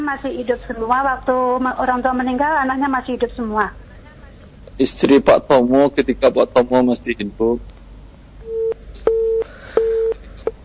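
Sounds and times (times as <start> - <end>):
speech: 0.0 - 3.8, 4.8 - 7.7
telephone busy tone after a phone-in caller is cut off: 8.5 - 10.2.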